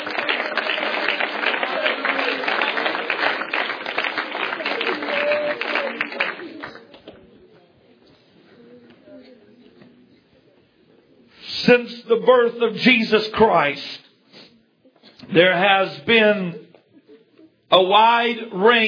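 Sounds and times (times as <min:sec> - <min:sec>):
audience applause: 0:00.0 - 0:07.0
speech: 0:11.7 - 0:14.0, 0:15.4 - 0:16.6, 0:17.7 - 0:18.8.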